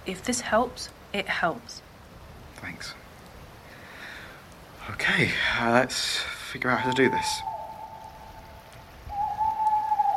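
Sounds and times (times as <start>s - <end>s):
speech: 0.0s - 1.9s, 2.6s - 3.0s, 4.8s - 7.5s
soft hissing background: 0.0s - 10.1s
owl hooting: 6.8s - 10.1s.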